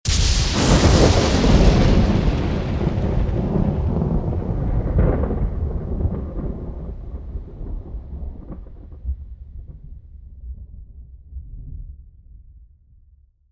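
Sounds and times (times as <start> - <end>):
lightning thunder: 0.1 - 12.1.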